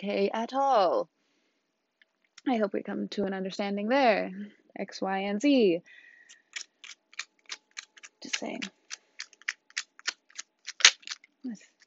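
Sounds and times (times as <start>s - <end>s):
speech: 0.0s - 1.2s, 2.4s - 6.4s, 8.2s - 8.8s, 11.4s - 11.7s
tarot cards being shuffled and drawn: 6.4s - 11.8s.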